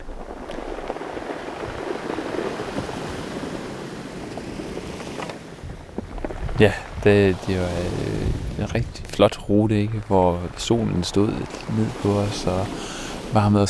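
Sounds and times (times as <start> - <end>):
pebbles rolled by sea waves on shore: 0.0 - 13.4
sea surf washing against a shore: 0.0 - 13.6
wind rumbling: 0.0 - 13.6
speech: 6.6 - 13.6.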